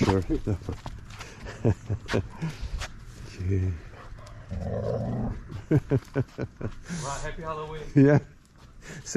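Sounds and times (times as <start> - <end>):
speech: 0.0 - 0.9, 1.6 - 2.6, 3.4 - 3.9, 4.5 - 9.1
laughter: 0.0 - 2.7, 5.5 - 7.2, 7.8 - 8.4
golden retriever growling: 4.2 - 5.6.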